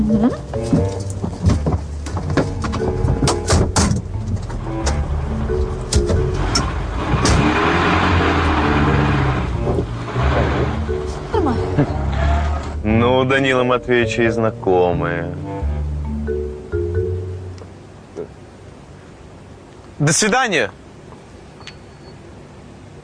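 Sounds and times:
speech: 0.0s - 0.8s, 13.3s - 15.5s, 20.0s - 20.8s
chauffeur-driven car engine and road rumble pulling away: 0.0s - 23.0s
car door clunks and clicks: 0.6s - 5.0s.

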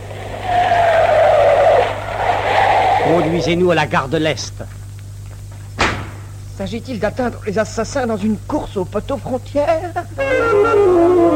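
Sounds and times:
taxi tires screeching while pulling up: 0.0s - 3.9s
speech: 3.1s - 4.8s, 6.6s - 11.3s.

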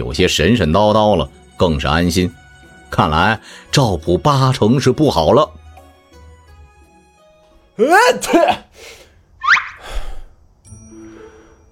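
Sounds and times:
speech: 0.0s - 5.6s, 7.8s - 9.6s
man with a cold sneezing: 8.0s - 10.2s.

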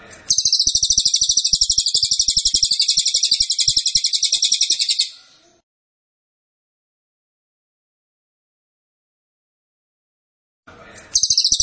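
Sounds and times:
cililin song for tutoring captive songbirds: 0.3s - 5.2s, 11.2s - 11.6s.

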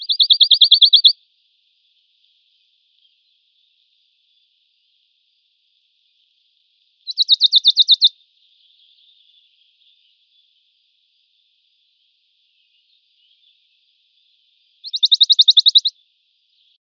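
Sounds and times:
Western Bonelli's warbler trilling song: 0.0s - 1.1s, 7.1s - 8.1s, 14.8s - 15.9s
faint steady hiss: 1.1s - 16.8s.

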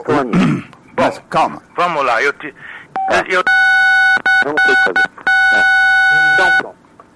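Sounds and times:
speech: 0.0s - 3.7s, 4.4s - 6.8s
electronic beeping on a landline phone call: 2.9s - 6.7s.

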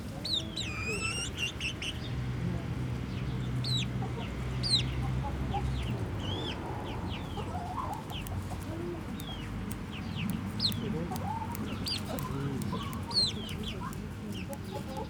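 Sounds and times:
chicks peeping in a chicken house in a museum garden: 0.2s - 2.4s, 3.0s - 15.0s
hens clucking in a chicken house in a museum garden: 3.5s - 15.0s.

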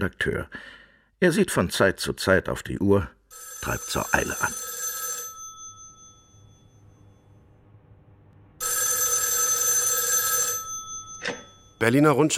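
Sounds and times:
speech: 0.0s - 4.6s, 11.8s - 12.3s
telephone electric bell ringing in a newspaper editorial office: 3.3s - 7.4s, 8.6s - 11.9s.

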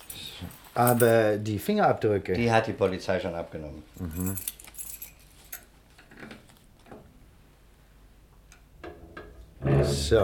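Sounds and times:
faint jangling of keys used to open a safe: 0.0s - 1.2s, 4.0s - 5.7s
handling sounds: 0.0s - 1.3s, 3.9s - 5.7s
speech: 0.4s - 4.6s, 9.8s - 10.2s.

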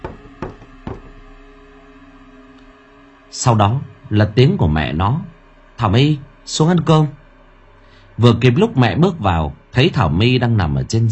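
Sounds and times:
knocking on a door: 0.0s - 1.2s
speech: 3.3s - 7.2s, 8.2s - 11.1s.

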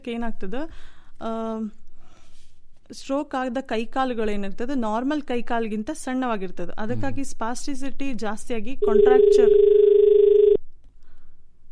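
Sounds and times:
speech: 0.0s - 1.8s, 2.9s - 9.9s
telephone tone from an incoming call on a radio phone-in: 8.8s - 10.6s.

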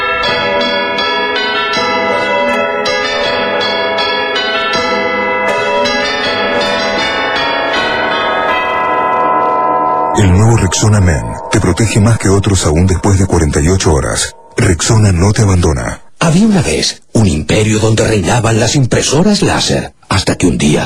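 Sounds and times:
village church bell ringing: 0.0s - 15.5s
speech: 10.2s - 20.8s.

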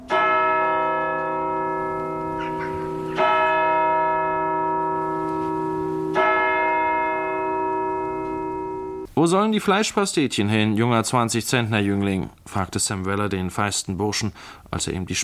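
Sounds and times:
old church bells ringing after a wedding: 0.0s - 9.1s
speech: 9.2s - 15.2s.

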